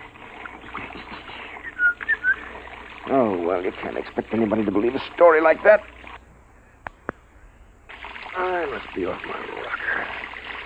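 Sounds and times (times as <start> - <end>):
shower spraying water: 0.0 - 5.8, 7.9 - 10.6
short bright whistled notes: 1.6 - 2.5
speech: 3.1 - 6.0, 8.7 - 10.3.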